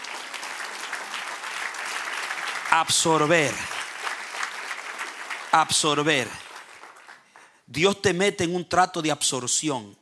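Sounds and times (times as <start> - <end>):
congregation applauding at a Spanish-language Christian church service: 0.0 - 7.6
speech: 2.8 - 3.8, 5.5 - 6.4, 7.7 - 9.9.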